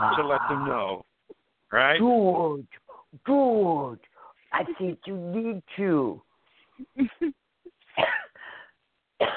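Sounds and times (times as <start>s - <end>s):
speech: 0.0s - 1.1s, 1.7s - 7.4s, 9.2s - 9.3s
person in a coughing fit with rough hacking bursts: 8.0s - 8.3s, 9.2s - 9.3s.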